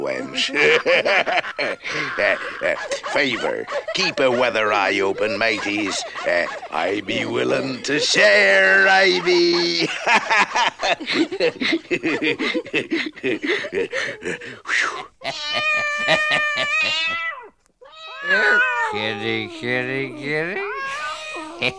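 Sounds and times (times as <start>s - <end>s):
laughter: 0.0s - 17.2s, 18.2s - 21.7s
speech: 0.0s - 17.3s, 18.2s - 20.8s, 21.6s - 21.7s
cat meowing: 15.2s - 21.7s.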